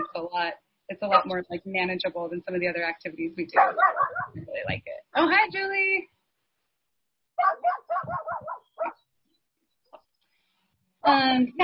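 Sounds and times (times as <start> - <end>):
speech: 0.1 - 6.2, 7.4 - 9.0, 11.0 - 11.6
dog barking: 3.6 - 4.4, 7.4 - 9.0.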